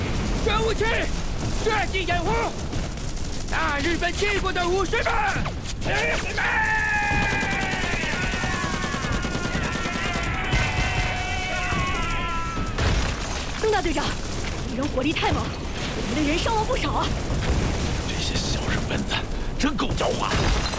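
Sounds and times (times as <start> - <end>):
cannon fire and gunfire in a radio drama battle scene: 0.0 - 19.3, 19.9 - 20.7
shouting voices and battle cries in a radio drama battle: 4.6 - 13.0.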